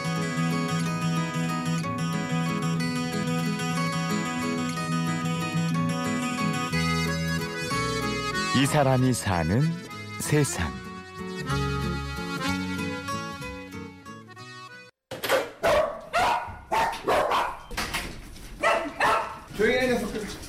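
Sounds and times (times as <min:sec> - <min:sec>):
tuneful music: 0:00.0 - 0:14.9
speech: 0:08.6 - 0:10.8
chorus of dogs barking at an abandoned-animal shelter: 0:15.2 - 0:17.7, 0:18.6 - 0:19.5.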